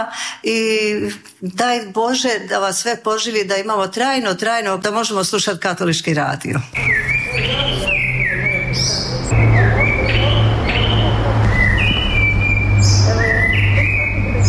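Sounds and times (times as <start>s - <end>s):
speech: 0.0s - 7.9s
many birds chirping and whistling in a monastery courtyard: 6.8s - 14.4s
steady low hum: 6.8s - 14.4s.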